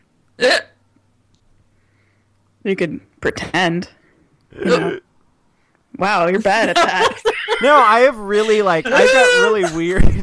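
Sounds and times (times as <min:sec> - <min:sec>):
speech: 0:00.4 - 0:00.7, 0:02.6 - 0:05.1, 0:05.9 - 0:10.2
person hiccuping: 0:00.4 - 0:00.8, 0:04.5 - 0:05.1, 0:08.9 - 0:09.8
laughter: 0:06.5 - 0:10.2.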